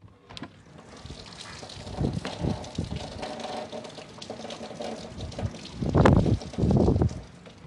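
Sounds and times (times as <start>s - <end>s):
strong wind roaring through an open window: 1.0s - 3.4s, 5.1s - 7.6s.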